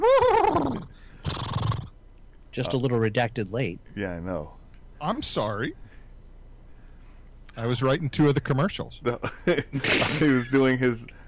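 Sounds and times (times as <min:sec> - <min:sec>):
horse snorting: 0:00.7 - 0:01.9
speech: 0:02.6 - 0:05.9, 0:07.6 - 0:11.2.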